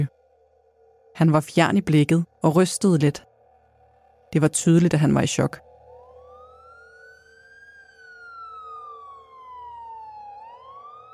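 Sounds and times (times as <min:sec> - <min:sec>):
speech: 0:01.2 - 0:03.3, 0:04.3 - 0:05.7
ambulance siren wailing as ambulances arrive at a house in Kalbakken Norway: 0:05.6 - 0:11.1.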